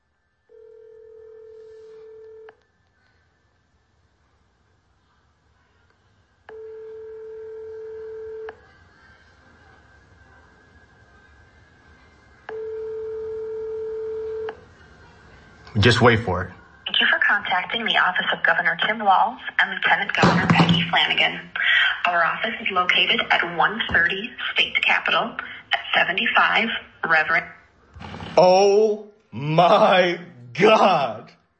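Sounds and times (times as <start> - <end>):
electronic telephone ring tone through a handset: 0.5 - 2.5, 6.5 - 8.6, 12.5 - 14.6
speech: 15.8 - 16.6, 17.5 - 27.4, 28.4 - 31.3.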